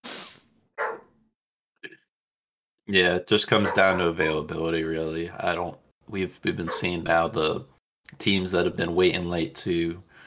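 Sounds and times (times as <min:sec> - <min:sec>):
dog barking: 0:00.8 - 0:01.1, 0:03.6 - 0:04.1, 0:06.7 - 0:06.9
speech: 0:02.9 - 0:10.1.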